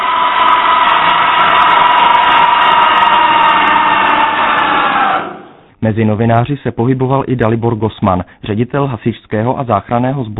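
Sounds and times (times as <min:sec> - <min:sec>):
siren wailing in a metro: 0:00.0 - 0:05.7
speech: 0:05.8 - 0:10.3.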